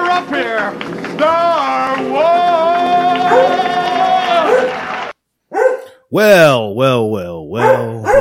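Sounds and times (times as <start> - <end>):
speech: 0.2 - 2.5, 6.1 - 8.1
dog barking: 3.3 - 3.6, 4.5 - 4.8, 5.5 - 6.0, 7.6 - 8.1.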